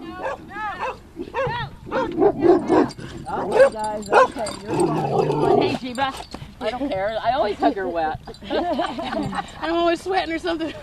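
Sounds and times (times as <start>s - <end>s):
several dogs barking and yipping: 0.2s - 5.7s
speech: 3.4s - 10.8s
laughter: 6.7s - 9.8s, 10.5s - 10.8s.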